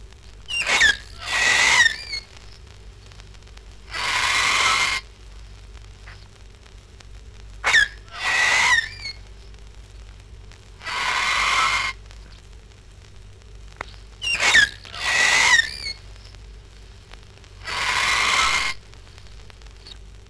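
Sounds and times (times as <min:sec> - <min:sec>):
tropical birds screeching and squawking: 0:00.5 - 0:02.3, 0:03.9 - 0:05.0, 0:07.6 - 0:09.2, 0:10.8 - 0:12.0, 0:14.2 - 0:16.0, 0:17.6 - 0:18.8.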